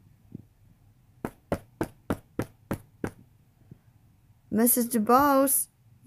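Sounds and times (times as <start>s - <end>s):
sharp knocks on a wooden door in a house hallway: 1.2s - 3.2s
speech: 4.5s - 6.0s.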